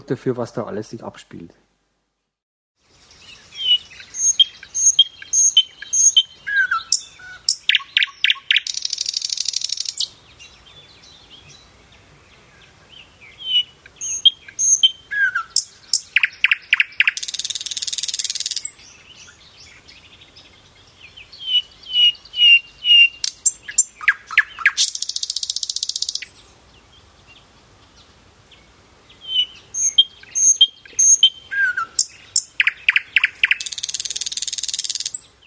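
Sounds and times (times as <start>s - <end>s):
speech: 0.0s - 1.6s
nightingale singing: 2.9s - 35.4s.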